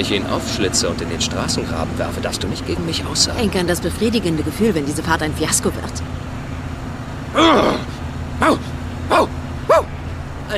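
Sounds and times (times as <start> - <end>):
speech: 0.0 - 6.3, 7.4 - 9.3
steady low engine-like hum: 0.0 - 10.5
dog barking: 9.1 - 9.9.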